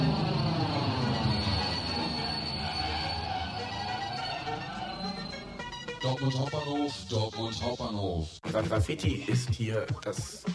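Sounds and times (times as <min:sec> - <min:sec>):
train rolling along the rails in Dortmund Germany heard on board: 0:00.0 - 0:05.9
faint high metallic squeal of a train: 0:00.0 - 0:06.8
speech: 0:06.0 - 0:10.5.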